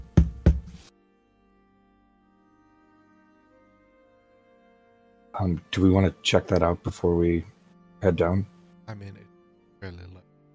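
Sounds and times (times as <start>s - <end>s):
faint erratic knocking on a door: 0.0s - 0.8s
speech: 5.4s - 10.3s.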